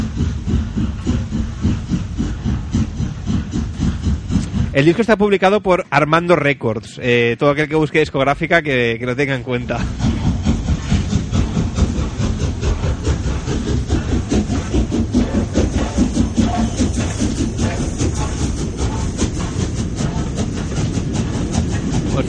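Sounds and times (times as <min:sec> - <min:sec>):
continuous low rumble of a train: 0:00.0 - 0:05.9, 0:07.9 - 0:22.2
train wheels clickety-clack over track joints: 0:00.0 - 0:06.6, 0:07.6 - 0:22.2
speech: 0:04.8 - 0:10.2.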